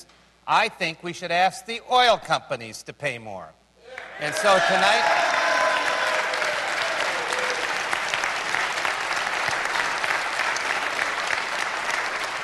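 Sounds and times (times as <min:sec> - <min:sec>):
speech: 0:00.0 - 0:03.6, 0:04.2 - 0:05.4
large audience applauding during budget address: 0:03.9 - 0:12.4.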